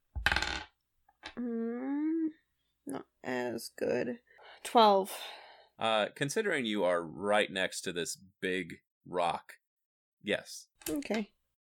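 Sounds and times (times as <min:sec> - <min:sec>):
dice rolled for an attack clattering across a hard tabletop: 0:00.2 - 0:01.4
speech: 0:02.9 - 0:09.6, 0:10.2 - 0:11.4.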